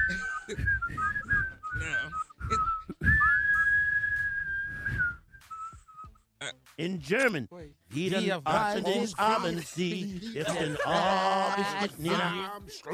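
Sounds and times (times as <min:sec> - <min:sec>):
person whistling a short tune: 0:00.0 - 0:06.3
speech: 0:00.1 - 0:01.9, 0:06.8 - 0:12.9
laughter: 0:08.4 - 0:12.9.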